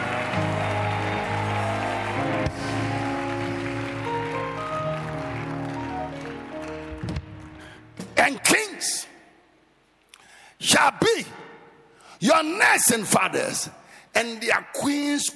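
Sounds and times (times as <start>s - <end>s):
church audience clapping and screaming: 0.0s - 8.2s
sustained organ-like chords: 0.0s - 8.9s
speech: 12.4s - 15.3s.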